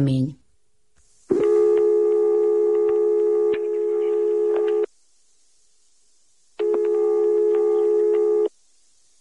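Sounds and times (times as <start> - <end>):
speech: 0.0 - 0.4
telephone line tone from a dialed number: 1.3 - 4.9, 6.6 - 8.5.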